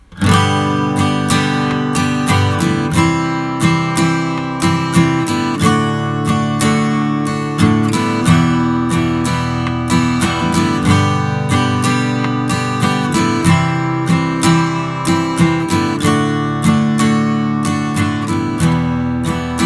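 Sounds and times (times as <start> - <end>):
G-C-D-Em chord progression: 0.0 - 19.6.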